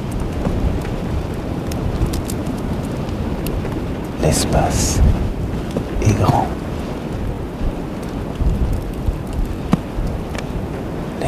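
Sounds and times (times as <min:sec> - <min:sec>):
strong wind roaring over mountain ridges: 0:00.0 - 0:11.2
speech: 0:04.2 - 0:05.3, 0:06.0 - 0:06.6.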